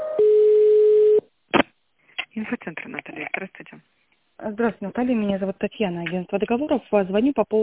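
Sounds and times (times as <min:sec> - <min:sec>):
electronic telephone tones while a call is transferred: 0:00.2 - 0:01.2
speech: 0:02.5 - 0:07.6.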